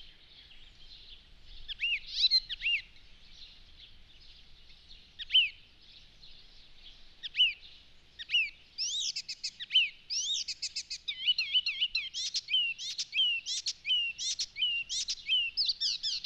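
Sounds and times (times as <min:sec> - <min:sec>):
Icterine warbler singing: 0:00.0 - 0:16.2.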